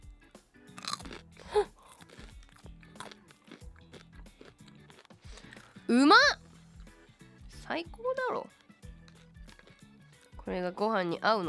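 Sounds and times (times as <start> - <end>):
crunchy chewing of a mouthful of rice side dish: 0.7 - 5.9, 8.5 - 10.4
speech: 5.9 - 6.4, 7.7 - 8.6, 10.5 - 11.4.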